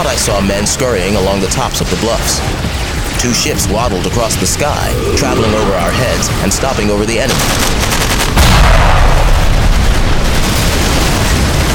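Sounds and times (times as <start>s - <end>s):
speech: 0.0s - 9.0s
cannon explosion: 7.3s - 11.6s.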